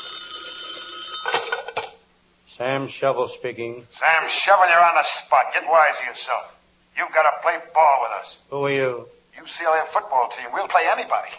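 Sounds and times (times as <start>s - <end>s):
old-fashioned telephone bell ringing: 0.0s - 2.0s
speech: 2.6s - 11.3s.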